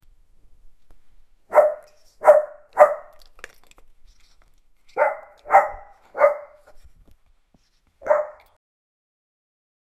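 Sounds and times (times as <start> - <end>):
dog barking: 1.5 - 3.2, 5.0 - 6.7, 8.0 - 8.6.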